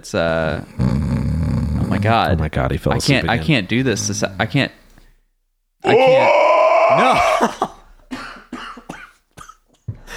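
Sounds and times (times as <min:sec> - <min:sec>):
speech: 0:00.0 - 0:00.9, 0:02.0 - 0:04.8, 0:05.8 - 0:06.4, 0:07.0 - 0:07.8
man coughing in harsh bursts: 0:07.0 - 0:09.9.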